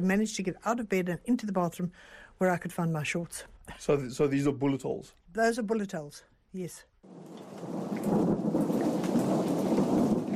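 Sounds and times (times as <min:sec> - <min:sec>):
speech: 0:00.0 - 0:07.7
deep rolling rumble of thunder: 0:07.1 - 0:10.3
steady downpour of rain on parched farmland: 0:07.1 - 0:10.3.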